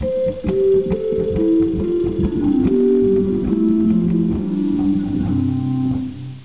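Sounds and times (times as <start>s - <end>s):
Gedeckt 8 organ stop: 0.0s - 6.4s.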